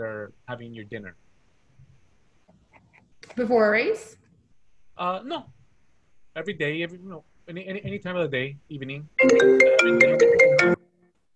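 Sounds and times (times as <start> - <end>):
speech: 0.0 - 1.3, 3.3 - 4.2, 5.0 - 5.6, 6.4 - 10.8
phone ringtone: 9.2 - 10.8.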